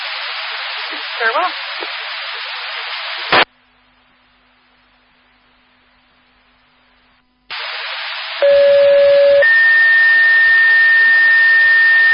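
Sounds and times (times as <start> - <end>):
radio channel hiss: 0.0 - 5.6, 6.4 - 12.1
radio squelch click: 0.6 - 3.5
speech: 0.9 - 2.5.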